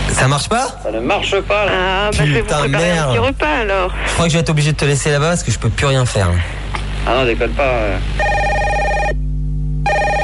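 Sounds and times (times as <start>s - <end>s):
speech: 0.2s - 8.5s
telephone ringing with a steady electronic tone: 8.2s - 9.2s, 9.8s - 10.2s.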